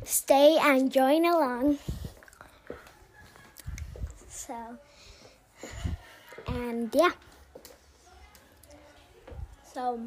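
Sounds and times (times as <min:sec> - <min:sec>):
speech: 0:00.1 - 0:02.0, 0:04.5 - 0:04.9, 0:06.5 - 0:07.3, 0:09.8 - 0:10.0
chewing with wet crunchy mouth sounds: 0:02.2 - 0:03.9.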